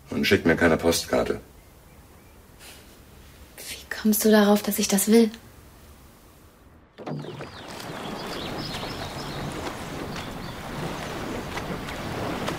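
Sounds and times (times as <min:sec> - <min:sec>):
wind: 0:00.0 - 0:12.5
speech: 0:00.1 - 0:01.5, 0:04.0 - 0:05.4
water rushing past rowing boat: 0:05.8 - 0:12.5
oars of rowing crew in a new boat splashing and knocking: 0:07.0 - 0:12.5.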